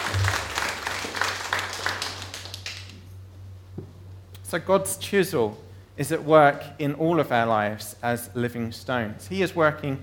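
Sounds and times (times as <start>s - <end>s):
audience applause: 0.0s - 2.9s
low steady hum: 0.0s - 10.0s
speech: 4.5s - 10.0s.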